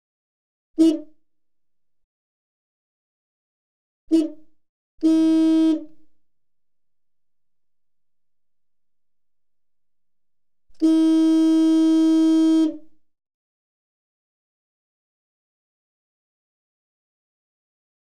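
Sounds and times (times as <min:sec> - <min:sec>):
car horn blasts heard from car interior: 0:05.0 - 0:06.0, 0:10.8 - 0:12.8.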